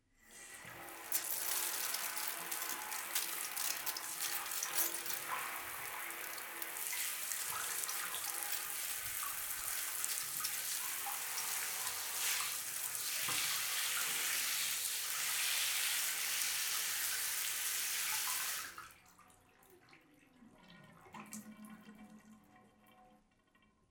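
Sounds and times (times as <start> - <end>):
shower running: 0.2 - 19.0.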